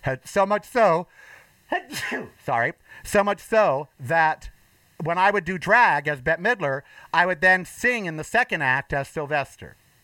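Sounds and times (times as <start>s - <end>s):
speech: 0.0s - 9.8s
person sneezing: 1.8s - 2.4s.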